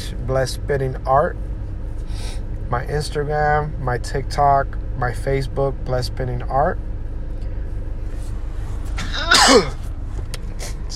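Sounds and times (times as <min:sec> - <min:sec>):
steady low rumble: 0:00.0 - 0:10.9
speech: 0:00.3 - 0:01.5, 0:02.1 - 0:06.9, 0:09.5 - 0:09.8
person driving a car sneezing: 0:09.0 - 0:09.8.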